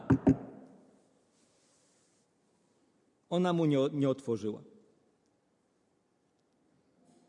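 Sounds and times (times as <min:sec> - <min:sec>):
knocking on a wooden door: 0:00.0 - 0:00.5
speech: 0:03.3 - 0:04.7.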